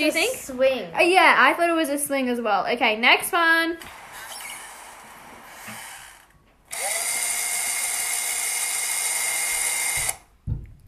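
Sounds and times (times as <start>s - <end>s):
speech: 0.0s - 4.0s
electric power drill whirring: 3.8s - 10.3s.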